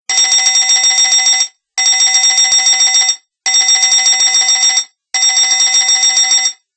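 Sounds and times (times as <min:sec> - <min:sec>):
HTC 5800 telephone bell ringing: 0:00.1 - 0:06.6.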